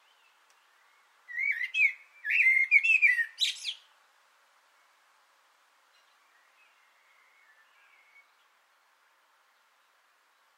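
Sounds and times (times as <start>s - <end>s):
common blackbird singing from an antenna: 0.0s - 3.9s, 5.9s - 8.5s.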